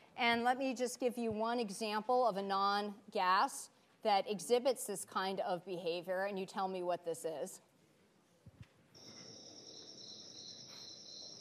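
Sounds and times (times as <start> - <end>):
speech: 0.2 - 7.7
crickets chirping in a high-pitched trill: 9.0 - 11.4.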